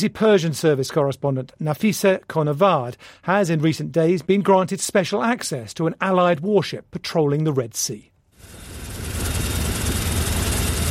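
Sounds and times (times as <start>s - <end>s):
speech: 0.0s - 8.6s
military helicopter engine roar heard from on board: 8.4s - 10.9s.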